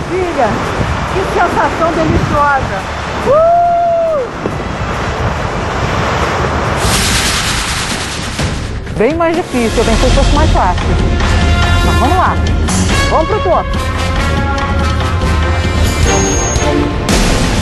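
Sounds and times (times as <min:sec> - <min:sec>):
wind buffeting the microphone: 0:00.0 - 0:11.1
ocean surf roaring heard from a clifftop: 0:00.0 - 0:17.6
speech: 0:00.1 - 0:03.6, 0:09.0 - 0:14.0
whistling call: 0:15.9 - 0:16.8.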